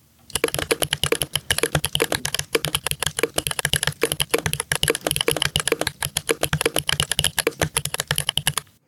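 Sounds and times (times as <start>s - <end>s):
rapid typing on a mechanical keyboard with Oreo switches: 0.3s - 8.8s.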